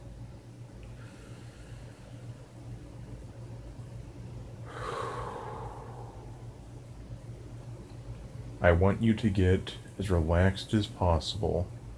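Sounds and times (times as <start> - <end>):
steady low hum: 0.0 - 11.9
deep breath in and slowly out: 1.0 - 2.4, 4.6 - 6.8
speech: 8.6 - 11.8.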